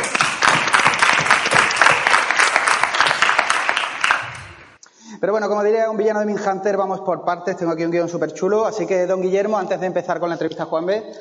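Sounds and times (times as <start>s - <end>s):
audience clapping: 0.0s - 4.8s
speech: 5.2s - 11.2s.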